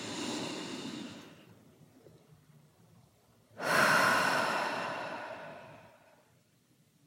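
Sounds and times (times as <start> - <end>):
deep breath with a soft airy rush: 0.0 - 1.6, 3.6 - 6.4.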